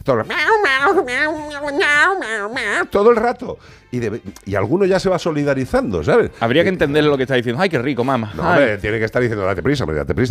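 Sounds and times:
speech: 0.0 - 10.2
dog whining and yelping barks: 0.3 - 2.9.

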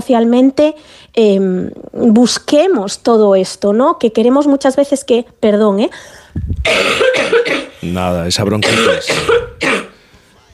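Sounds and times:
speech: 0.0 - 9.8
harsh raspy coughs: 6.6 - 7.8, 8.5 - 10.0.

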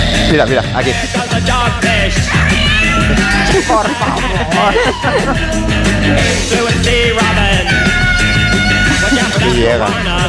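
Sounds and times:
loud busy pop track with driving bass and drums: 0.0 - 10.2
speech: 0.3 - 7.8, 9.2 - 10.2
high shrill vocal yelps and shouts in a pop song: 2.2 - 5.4
laughter: 2.3 - 6.7, 8.7 - 9.9.

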